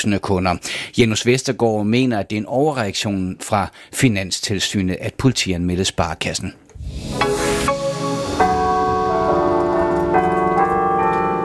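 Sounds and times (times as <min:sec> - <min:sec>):
speech: 0:00.0 - 0:07.4
newly installed carillon at Viborg Cathedral in Denmark playing a melody: 0:07.7 - 0:11.4.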